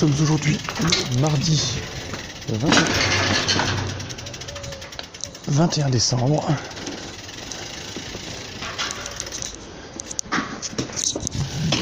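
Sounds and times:
speech: 0:00.0 - 0:03.9, 0:05.5 - 0:06.8
sharp mechanical ticks: 0:00.0 - 0:05.6, 0:06.6 - 0:09.6
bicycle hub freewheel clicking: 0:00.0 - 0:09.6
outdoor road rumble: 0:00.0 - 0:11.8.

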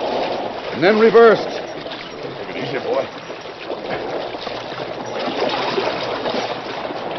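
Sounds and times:
steamboat paddle wheels churning water: 0:00.0 - 0:07.1
speech: 0:00.8 - 0:01.6, 0:02.7 - 0:03.2.

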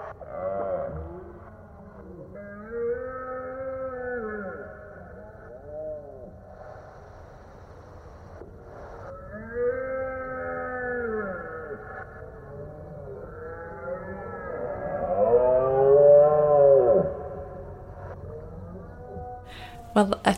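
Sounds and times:
deer stags roaring during the autumn rut in the mountains of Scotland: 0:02.4 - 0:05.6, 0:09.1 - 0:17.4
speech: 0:20.0 - 0:20.3.

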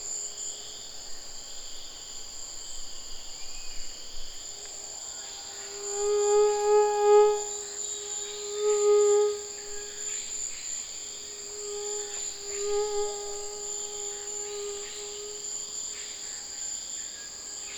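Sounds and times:
shrill insect chorus: 0:00.0 - 0:17.7
tropical mosquito wing buzz in Saül: 0:03.4 - 0:16.7.

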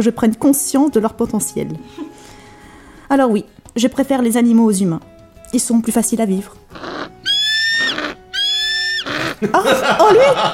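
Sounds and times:
speech: 0:00.0 - 0:02.2, 0:03.1 - 0:06.9, 0:09.4 - 0:10.5
pet golden eagle screeching: 0:06.7 - 0:09.4
laughter: 0:09.2 - 0:10.5.

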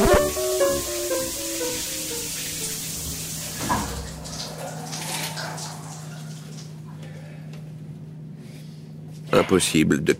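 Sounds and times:
brief tonal hum: 0:00.0 - 0:02.8
shower water running: 0:00.0 - 0:06.9
speech: 0:09.5 - 0:10.1.

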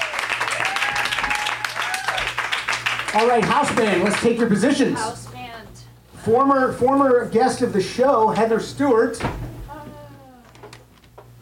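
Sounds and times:
people whooping and calling out: 0:00.0 - 0:03.0
audience applauding: 0:00.0 - 0:04.6
speech: 0:03.1 - 0:05.2, 0:06.2 - 0:09.4.

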